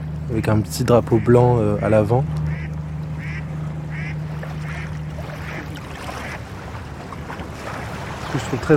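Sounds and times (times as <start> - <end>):
river barge carrying sand engine drone: 0.0 - 8.7
river waves washing: 0.0 - 8.7
speech: 0.3 - 2.4, 8.4 - 8.7
ducks quacking: 0.3 - 6.4.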